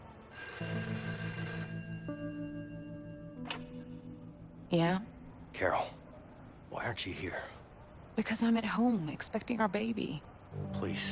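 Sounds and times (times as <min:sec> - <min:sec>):
telephone ringing with bright electronic trill: 0:00.3 - 0:03.8
speech: 0:04.7 - 0:06.0, 0:06.8 - 0:07.6, 0:08.2 - 0:11.1.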